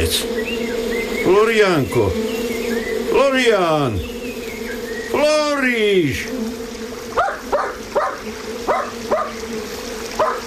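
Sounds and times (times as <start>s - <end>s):
speech: 0.1s - 0.5s, 1.2s - 2.3s, 3.1s - 4.2s, 5.1s - 6.4s
small dog barking and yipping: 7.2s - 9.4s, 10.2s - 10.4s.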